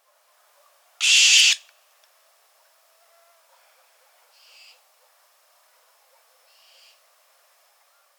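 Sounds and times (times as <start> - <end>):
owl flight calls: 1.0 - 1.7.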